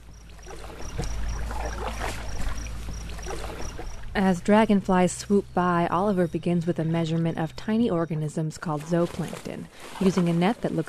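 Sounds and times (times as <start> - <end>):
loaded canoe pushing off into the water, scraping and sloshing: 0.0 - 4.2, 8.7 - 10.8
speech: 4.2 - 10.8.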